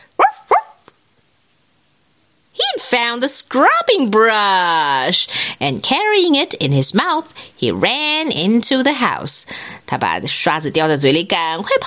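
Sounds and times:
dog giving short bright barks: 0.1s - 0.9s
faint little dog yip: 0.2s - 0.8s
speech: 2.9s - 11.8s.

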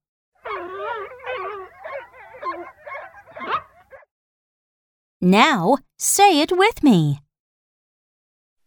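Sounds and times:
baby foxes yelping and squealing: 0.4s - 4.1s
speech: 5.2s - 7.2s.

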